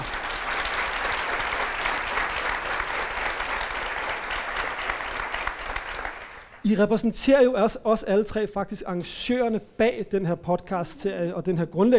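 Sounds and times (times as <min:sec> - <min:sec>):
audience applause for a panel: 0:00.0 - 0:06.6
speech: 0:06.7 - 0:11.9.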